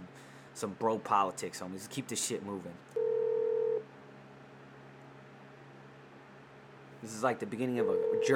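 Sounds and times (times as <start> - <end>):
faint low hum: 0.0 - 8.3
speech: 0.6 - 3.0, 7.0 - 8.3
telephone ringback tone over the line: 3.0 - 3.8, 7.8 - 8.3.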